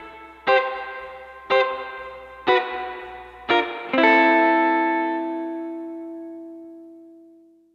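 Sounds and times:
70s analog funk guitar: 0.0s - 7.3s.

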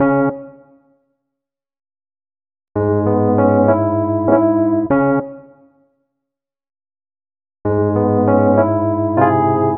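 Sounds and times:
electric piano: 2.8s - 5.2s, 7.7s - 9.7s.

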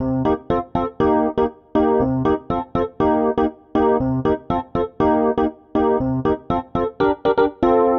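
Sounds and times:
electric piano C minor chord at 120 bpm: 0.0s - 7.9s.

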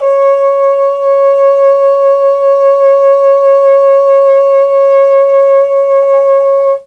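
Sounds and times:
Mellotron trombone note C#4: 0.0s - 6.8s.

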